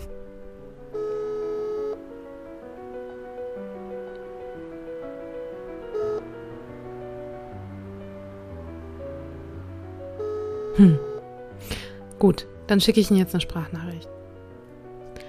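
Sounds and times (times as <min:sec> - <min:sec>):
telephone call ringing unanswered with synthetic electronic tones: 0:00.9 - 0:02.1, 0:05.8 - 0:06.4, 0:10.2 - 0:11.3
speech: 0:10.8 - 0:11.0, 0:12.2 - 0:14.2.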